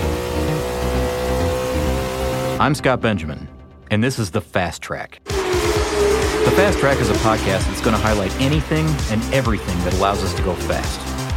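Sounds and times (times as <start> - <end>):
car engine revving hard and rapidly accelerating: 0.0 - 2.7, 5.3 - 11.3
speech: 2.6 - 5.4, 6.0 - 11.1.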